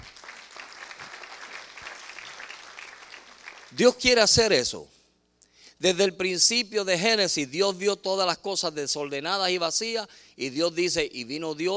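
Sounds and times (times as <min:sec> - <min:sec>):
congregation applauding: 0:00.0 - 0:03.8
speech: 0:03.7 - 0:05.0, 0:05.8 - 0:11.7.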